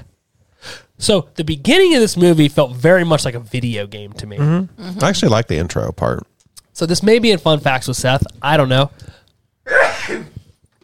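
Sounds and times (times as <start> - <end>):
speech: 1.0 - 10.3
loud sneeze: 9.6 - 10.4.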